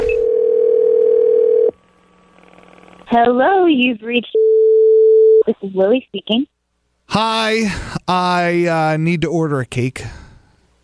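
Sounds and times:
telephone line ring tone before call connects: 0.0 - 1.7
speech: 3.1 - 4.4, 5.5 - 6.5, 7.1 - 10.2.

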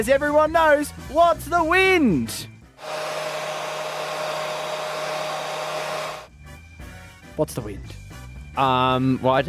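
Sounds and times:
speech: 0.0 - 3.2, 7.4 - 8.0, 8.6 - 9.4
hair dryer blowing with a thin motor whine: 2.8 - 6.3.

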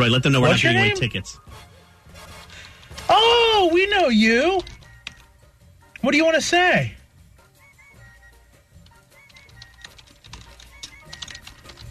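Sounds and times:
speech: 0.0 - 1.7, 3.1 - 4.8, 6.0 - 7.0
man typing on a computer keyboard: 4.4 - 5.3, 8.7 - 11.8.

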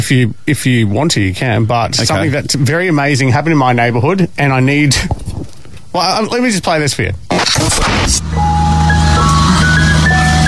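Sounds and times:
speech: 0.0 - 5.2, 6.0 - 8.5
burst of noise: 7.2 - 10.4
ice cream truck jingle on a residential street: 8.2 - 10.4.

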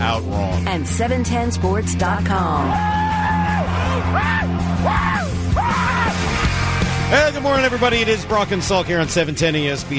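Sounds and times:
speech: 0.2 - 3.2, 4.0 - 5.9, 7.1 - 9.9
person letting out excited screaming whoops: 2.7 - 6.3.

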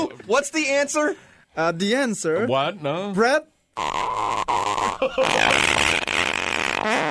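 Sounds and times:
speech: 0.3 - 6.1
long creaky fart with rasping buzzy texture: 3.8 - 7.1.

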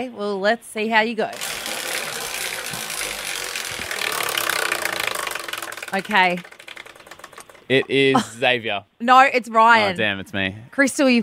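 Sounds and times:
speech: 0.0 - 1.7, 5.9 - 6.5, 7.7 - 11.2
prize wheel spinning with its pawl ticking: 1.3 - 8.2.

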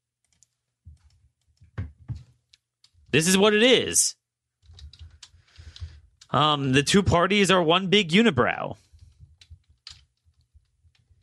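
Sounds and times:
typing on a computer keyboard: 0.2 - 1.8, 4.6 - 6.3, 9.0 - 11.2
speech: 3.1 - 4.2, 6.3 - 8.8.

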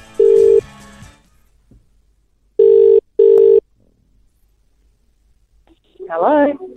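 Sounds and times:
outgoing telephone ringback tones: 0.2 - 0.7, 2.6 - 3.6.

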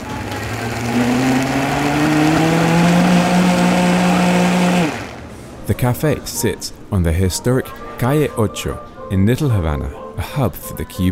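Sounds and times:
blender mixing a milkshake: 0.0 - 5.3
speech: 5.8 - 11.1.

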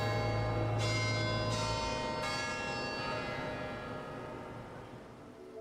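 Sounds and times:
church bells chiming: 0.0 - 5.0.

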